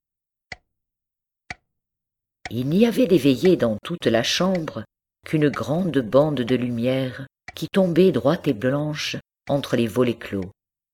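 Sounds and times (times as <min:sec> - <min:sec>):
large clock ticking in a quiet house: 0:02.5 - 0:07.8
speech: 0:02.5 - 0:10.6.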